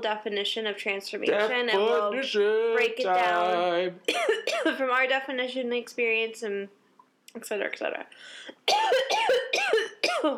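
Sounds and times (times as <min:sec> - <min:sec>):
speech: 0:00.0 - 0:10.3
person coughing roughly: 0:04.1 - 0:04.8, 0:08.7 - 0:10.3.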